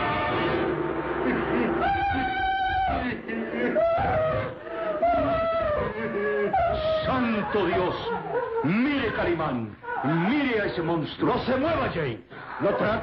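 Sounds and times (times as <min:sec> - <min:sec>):
laughter: 0:01.1 - 0:10.3, 0:12.5 - 0:13.0
woman screaming in terror: 0:01.6 - 0:08.8, 0:09.8 - 0:10.3
speech: 0:07.5 - 0:13.0.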